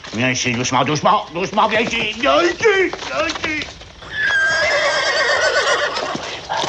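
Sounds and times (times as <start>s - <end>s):
speech: 0.1s - 3.8s
horse neighing: 2.1s - 6.6s.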